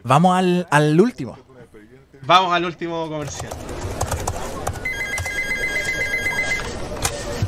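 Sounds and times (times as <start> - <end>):
speech: 0.0 - 1.4, 2.2 - 3.7
busy noisy background: 0.0 - 7.4
office telephone ringing with a warbling electronic trill: 4.7 - 6.8.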